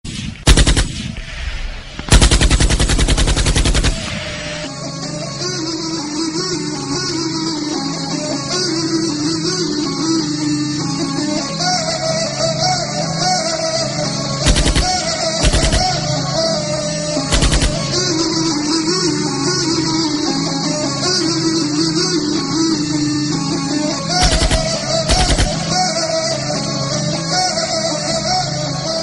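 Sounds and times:
gunshots: 0.0s - 4.7s, 14.4s - 16.4s, 17.2s - 18.2s, 24.2s - 26.0s
flute: 4.0s - 29.0s.

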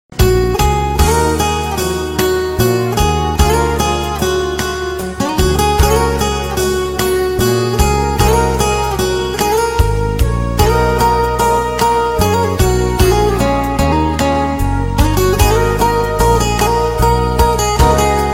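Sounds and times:
romantic guitar: 0.1s - 18.3s.

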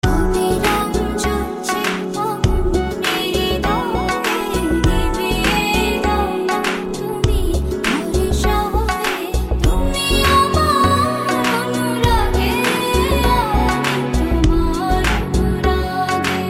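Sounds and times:
Bangla melodies: 0.0s - 16.4s.

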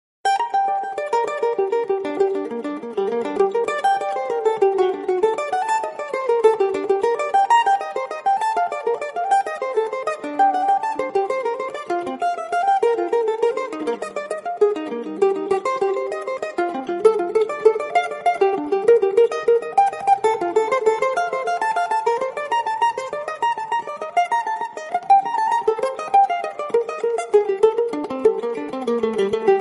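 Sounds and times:
bulbul banjo strings: 0.2s - 29.5s.

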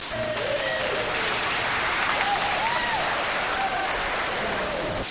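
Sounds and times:
applause tone: 0.1s - 5.0s.

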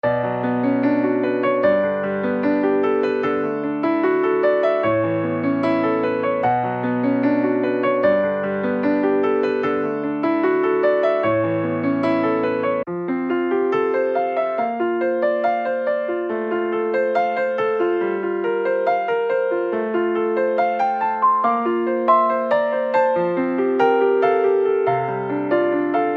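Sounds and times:
piano melodies: 0.0s - 26.1s.

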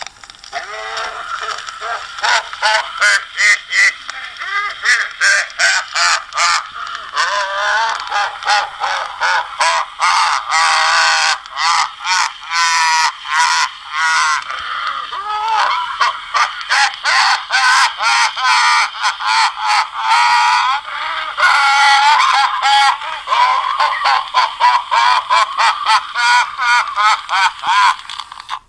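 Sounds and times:
creepy doll laugh: 0.5s - 28.6s.

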